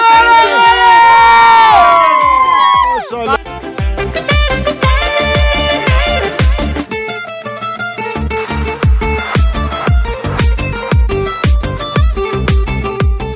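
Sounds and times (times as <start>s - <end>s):
children shouting and cheering while sledding down a snow slope outdoors: 0.0s - 3.4s
steady rhythmic pounding beat: 2.2s - 6.9s, 8.0s - 13.3s.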